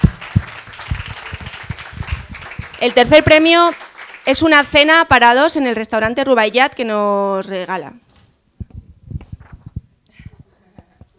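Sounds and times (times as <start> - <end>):
audience applause at an arts-day gala prize ceremony: 0.0 - 4.8
speech: 2.8 - 8.0.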